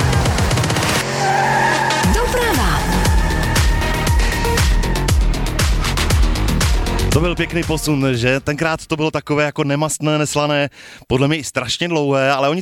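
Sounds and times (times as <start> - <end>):
screeching tire skid: 0.0 - 8.6
bright synth stabs: 0.0 - 9.0
driving beats: 0.0 - 9.3
radio station traffic report jingle: 0.8 - 10.5
speech: 7.2 - 12.6.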